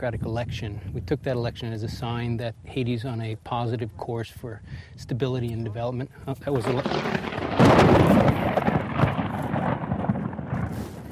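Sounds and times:
speech: 0.0 - 8.6
thunder crack and rumble from a nearby lightning strike in Haiti: 6.5 - 11.0.

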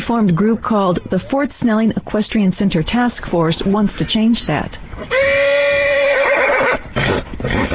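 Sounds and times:
speech: 0.1 - 5.5
mare at stables in Afton whinnying: 5.0 - 7.7.

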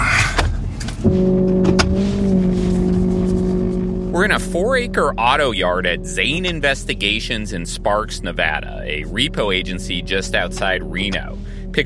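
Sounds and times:
old tow truck engine droning: 0.0 - 11.8
brief clunk: 0.1 - 2.0
speech: 4.2 - 11.8.

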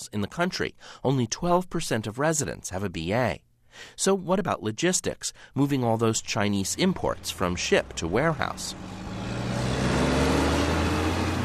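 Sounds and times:
speech: 0.1 - 9.1
tractor trailer engines rumbling on a dusty four-lane highway: 6.4 - 11.4.

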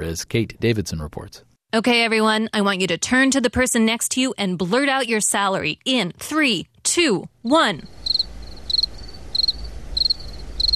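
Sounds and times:
speech: 0.0 - 8.0
faint continuous buzz: 7.0 - 10.7
crickets chirping: 7.9 - 10.7.

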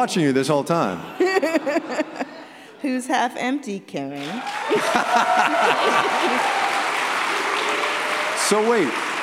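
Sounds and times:
speech: 0.0 - 6.6, 8.5 - 9.0
laughter: 1.0 - 2.8, 4.6 - 7.8
crowd clapping: 4.2 - 9.2.

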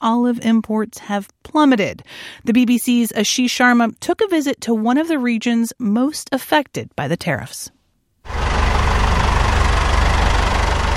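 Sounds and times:
speech: 0.0 - 8.4
tractor engine idling: 8.3 - 10.9.

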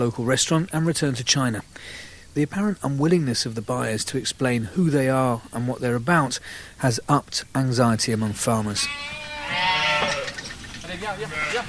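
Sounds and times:
speech: 0.0 - 9.7, 11.0 - 11.6
flock of black-faced Suffolk sheep bleating at feeding time on a farm: 8.7 - 11.6.

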